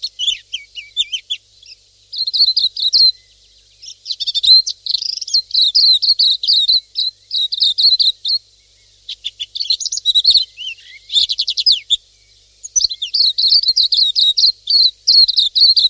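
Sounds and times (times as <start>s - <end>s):
pleci silvereye high twittering calls: 0.0s - 15.8s.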